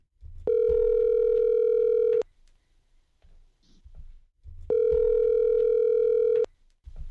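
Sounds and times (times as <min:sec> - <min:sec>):
electronic telephone ringback tone: 0:00.5 - 0:02.2, 0:04.7 - 0:06.5.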